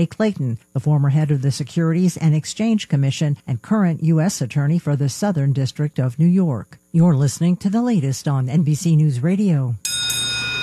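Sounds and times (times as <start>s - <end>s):
speech: 0.0s - 10.0s
bell ringing at an oil change shop: 9.8s - 10.6s.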